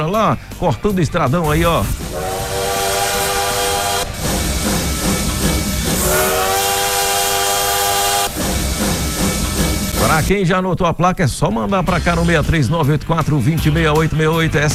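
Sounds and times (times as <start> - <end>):
speech: 0.0 - 2.3, 10.0 - 14.7
rumble and hiss of the moving train: 1.3 - 10.3
train whistle blasts: 1.9 - 8.6.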